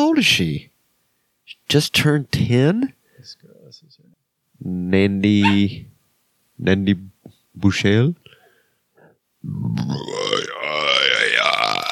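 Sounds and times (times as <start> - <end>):
speech: 0.1 - 0.7, 1.7 - 4.0, 4.6 - 5.9, 6.6 - 8.2, 9.4 - 10.8
long loud human burp: 9.8 - 11.8.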